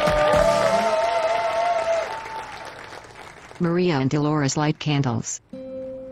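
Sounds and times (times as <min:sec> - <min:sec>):
crowd applauding: 0:00.0 - 0:03.9
speech: 0:03.6 - 0:05.5.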